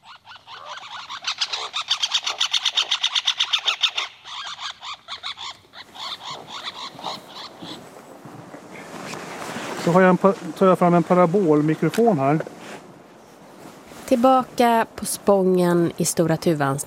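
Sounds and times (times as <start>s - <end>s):
two birds trading harsh aggressive calls: 0.0s - 9.0s
speech: 9.9s - 12.6s, 14.1s - 16.8s.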